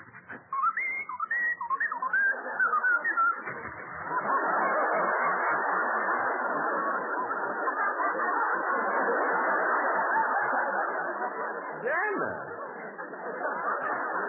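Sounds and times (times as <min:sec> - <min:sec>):
broad wash of crowd-like noise: 0:00.0 - 0:14.2
laughter: 0:00.3 - 0:14.2
whistled melody of gliding wavering notes: 0:00.4 - 0:04.2.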